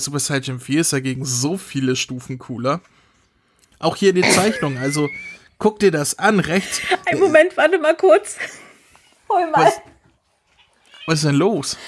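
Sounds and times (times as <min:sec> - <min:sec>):
speech: 0:00.0 - 0:03.0, 0:03.8 - 0:08.6, 0:09.3 - 0:09.9, 0:11.1 - 0:11.8
person laughing: 0:04.2 - 0:05.4, 0:06.7 - 0:07.5
cat meowing: 0:10.6 - 0:11.3.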